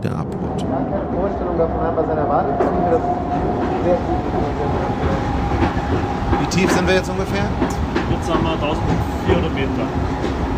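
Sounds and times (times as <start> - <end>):
speech: 0.0 - 4.7, 6.6 - 10.4
train rumbling through a mountain tunnel at a healing gallery: 0.0 - 10.5
train wheels clattering on rails: 2.5 - 10.5.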